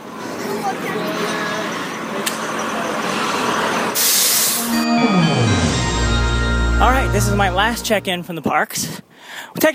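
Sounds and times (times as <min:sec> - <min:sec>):
shuttle bus engine rumbling: 0:00.0 - 0:08.8
speech: 0:00.7 - 0:01.3, 0:06.8 - 0:09.7
shuttle bus air brakes hissing: 0:04.0 - 0:04.7.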